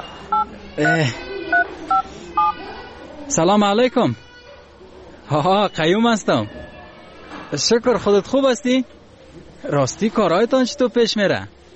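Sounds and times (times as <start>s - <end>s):
speech: 0.3s - 1.3s, 2.4s - 4.3s, 5.3s - 6.6s, 7.5s - 9.0s, 9.6s - 11.6s
telephone keypad dialing tones: 0.3s - 2.6s.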